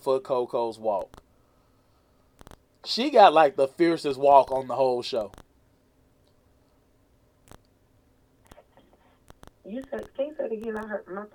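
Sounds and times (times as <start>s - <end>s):
speech: 0.0s - 1.2s, 2.8s - 5.4s, 9.7s - 11.3s
sharp clicks and crackles on a phone line: 0.9s - 1.3s, 2.3s - 2.9s, 4.4s - 5.6s, 7.4s - 7.8s, 8.4s - 11.3s
voice on a phone line breaking up: 9.6s - 11.3s.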